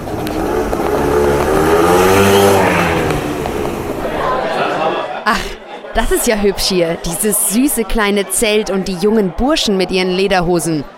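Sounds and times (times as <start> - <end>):
small motor scooter engine revving and pulling away: 0.0 - 4.2
laughter: 3.8 - 10.9
speech: 6.0 - 10.9.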